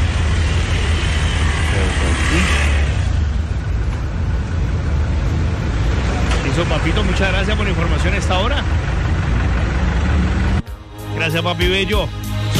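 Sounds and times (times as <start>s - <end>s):
broad road noise: 0.0s - 12.5s
car engines rumbling in slow traffic jam: 0.0s - 12.5s
speech: 6.9s - 9.1s, 11.2s - 12.2s.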